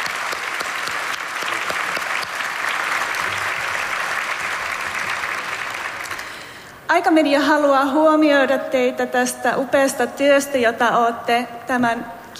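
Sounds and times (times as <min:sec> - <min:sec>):
large audience applauding loudly: 0:00.0 - 0:06.6
speech: 0:06.9 - 0:12.3.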